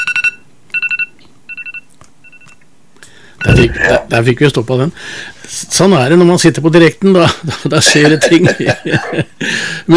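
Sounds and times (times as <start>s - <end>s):
phone ringing with an electronic tone: 0.0s - 2.6s
faint low hum: 2.6s - 5.6s
speech: 3.5s - 9.9s.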